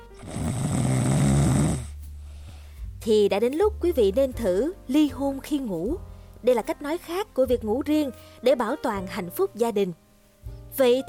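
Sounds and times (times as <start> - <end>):
person snoring: 0.0 - 2.5
speech: 3.0 - 10.0, 10.8 - 11.0.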